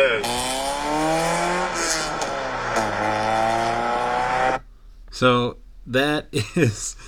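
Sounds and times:
Honda Civic engine with raspy aftermarket exhaust revving: 0.0s - 4.7s
speech: 5.2s - 7.0s.

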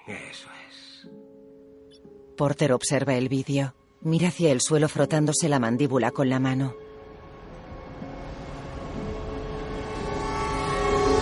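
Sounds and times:
speech: 0.1s - 1.2s, 2.4s - 6.9s
thin tonal whines: 6.8s - 11.2s
subway train rumbling through a metro tunnel: 7.2s - 11.2s.

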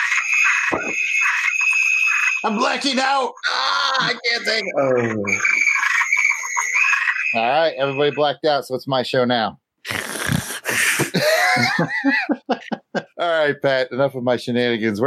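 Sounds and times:
laughter: 0.0s - 1.2s, 3.1s - 6.1s, 10.6s - 13.3s
toads or frogs trilling: 0.0s - 8.4s
speech: 2.4s - 5.6s, 7.3s - 9.6s, 11.8s - 12.4s, 13.3s - 15.0s.

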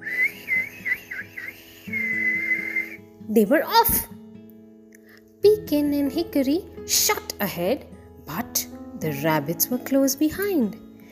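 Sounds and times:
shrill whistle blown to start a race: 0.0s - 3.0s
soft music: 0.0s - 11.1s
speech: 3.3s - 4.1s, 5.7s - 8.4s, 9.0s - 10.8s.

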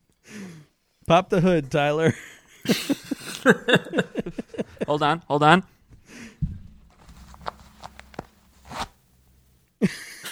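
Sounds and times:
speech: 1.1s - 5.7s
man's pants zipper being pulled: 6.9s - 9.6s.

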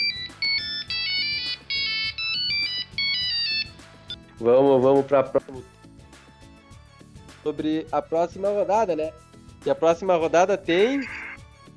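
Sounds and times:
monophonic mobile phone ringtone with electronic beeping melody: 0.0s - 4.3s, 10.8s - 11.7s
speech: 4.4s - 5.8s, 7.4s - 11.2s.

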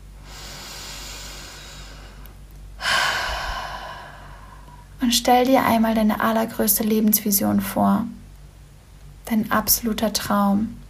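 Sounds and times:
deep breath: 0.2s - 4.9s
speech: 5.0s - 8.2s, 9.3s - 10.8s.

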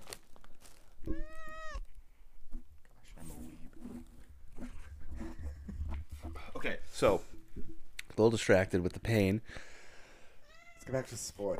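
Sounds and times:
cat meowing: 1.0s - 1.9s, 10.4s - 11.0s
speech: 6.6s - 7.3s, 8.2s - 9.7s, 10.9s - 11.5s.

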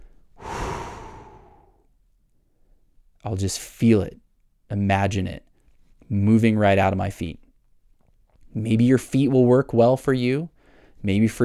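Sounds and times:
person breathing out slowly during a relaxation exercise: 0.4s - 1.8s
speech: 3.2s - 5.5s, 6.1s - 7.4s, 8.5s - 11.4s.

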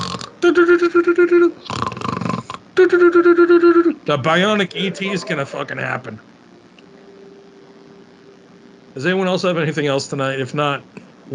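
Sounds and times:
person imitating loud snoring with the voice: 0.0s - 3.2s
speech: 0.4s - 1.8s, 2.8s - 6.3s, 9.0s - 11.3s.

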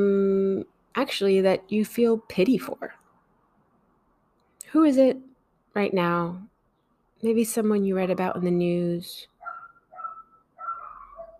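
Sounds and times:
speech: 1.0s - 3.0s, 4.7s - 6.5s, 7.2s - 9.3s
dog barking and yelping: 9.4s - 11.3s.

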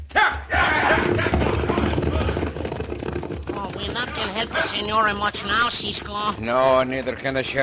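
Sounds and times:
horses' hooves clip-clopping as riders mount: 0.0s - 7.6s
whinny-like cry: 0.5s - 5.2s
speech: 4.4s - 7.6s.

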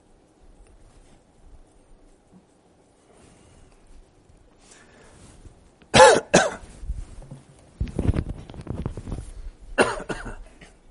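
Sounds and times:
low shuffling: 0.0s - 5.9s, 6.6s - 9.8s
loud sharp coughs: 5.9s - 6.7s, 9.8s - 10.8s.

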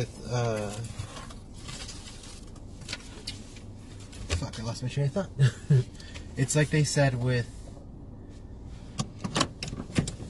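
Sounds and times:
speech: 0.0s - 1.0s, 4.4s - 7.6s
interior road rumble of a car being driven: 0.0s - 10.2s.

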